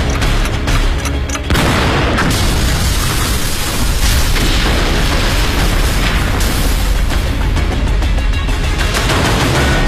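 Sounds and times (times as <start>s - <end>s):
dense crackling bursts: 0.0s - 9.7s
courtyard house exploding from time bombs: 1.5s - 7.5s.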